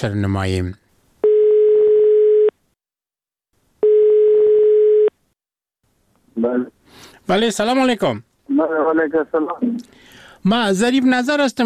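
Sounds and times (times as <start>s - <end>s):
speech: 0.0s - 0.8s, 6.4s - 11.6s
telephone ringback tone during an outgoing call: 1.2s - 2.5s, 3.8s - 5.1s.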